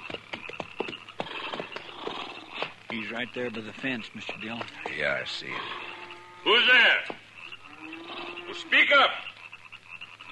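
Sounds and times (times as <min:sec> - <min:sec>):
horse hooves clopping on hard ground: 0:00.0 - 0:08.6
speech: 0:00.1 - 0:00.3, 0:02.9 - 0:05.8, 0:06.4 - 0:07.2, 0:08.5 - 0:09.3.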